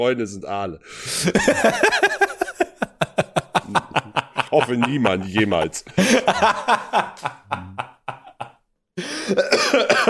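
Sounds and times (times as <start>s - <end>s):
speech: 0.0s - 2.2s, 4.5s - 7.4s
laughter: 1.2s - 8.6s, 9.2s - 10.0s
person in a coughing fit: 9.2s - 10.0s.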